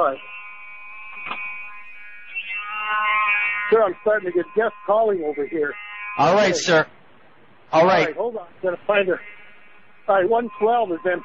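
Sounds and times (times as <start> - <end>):
speech: 0.0 - 0.4, 3.7 - 7.0, 7.7 - 9.3, 10.1 - 11.2
hotel fire alarm blaring with a harsh buzzing electronic tone: 0.0 - 6.9, 7.8 - 8.1.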